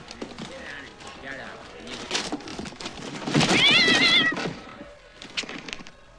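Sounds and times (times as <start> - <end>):
faint indistinct voices: 0.0 - 6.1
rustling: 0.0 - 6.1
fox high-pitched meow-like cry: 3.4 - 4.6.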